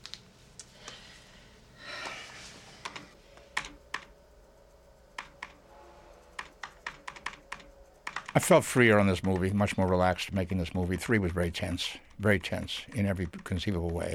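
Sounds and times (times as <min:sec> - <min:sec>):
faint steady hum: 0:00.0 - 0:14.1
keystrokes on a computer keyboard: 0:03.6 - 0:04.1, 0:05.1 - 0:05.6, 0:06.4 - 0:14.1
speech: 0:08.4 - 0:14.1.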